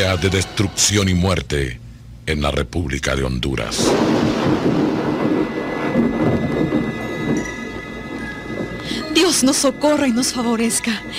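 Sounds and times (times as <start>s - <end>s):
speech: 0.1s - 5.1s, 9.2s - 11.1s
heavy rainstorm from a hurricane in Honduras: 3.8s - 10.0s
howling wind from a hurricane in Honduras: 3.9s - 11.1s.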